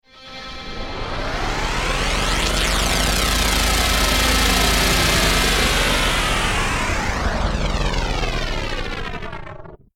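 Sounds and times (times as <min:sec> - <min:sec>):
science fiction generator powering up and down quickly and stalling: 0:00.2 - 0:09.9.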